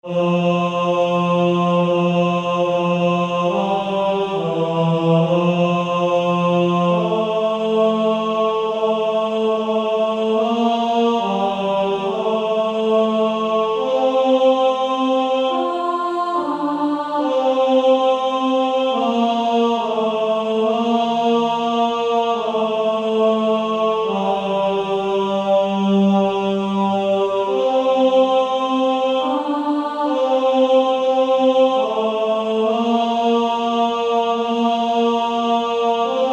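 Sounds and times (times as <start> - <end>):
male choir singing: 0.0 - 36.3.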